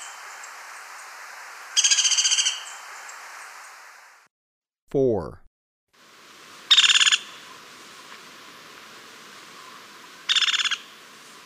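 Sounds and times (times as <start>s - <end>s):
speech: 4.9s - 5.4s
Crimson-mantled woodpecker calling with pulsed chattering bursts in Ecuador: 6.7s - 7.4s, 10.3s - 10.9s.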